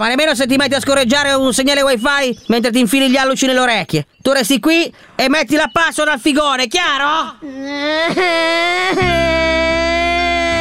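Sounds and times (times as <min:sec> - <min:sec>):
speech: 0:00.0 - 0:09.7
adult whimpering and crying: 0:07.3 - 0:10.5.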